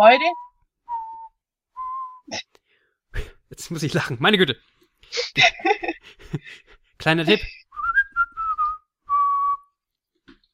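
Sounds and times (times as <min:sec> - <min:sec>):
speech: 0:00.0 - 0:00.4, 0:03.2 - 0:07.6
person whistling a video game melody: 0:00.2 - 0:02.3, 0:07.7 - 0:09.9
laughter: 0:05.2 - 0:07.4.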